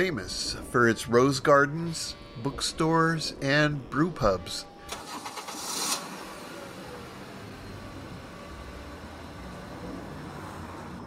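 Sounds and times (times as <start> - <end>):
speech: 0.0 - 4.7
car engine starting: 4.8 - 11.0.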